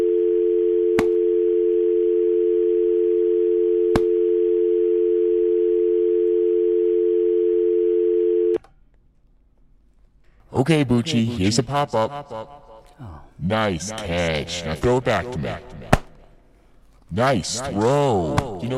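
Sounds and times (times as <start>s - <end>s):
telephone dial tone: 0.0s - 8.6s
speech: 10.6s - 15.8s, 17.1s - 18.7s.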